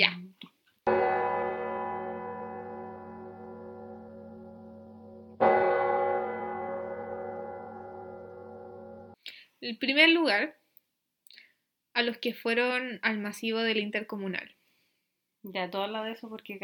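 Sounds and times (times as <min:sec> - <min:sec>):
deep church bell strikes: 0:00.9 - 0:09.2
speech: 0:09.7 - 0:10.6, 0:12.0 - 0:14.6, 0:15.4 - 0:16.6.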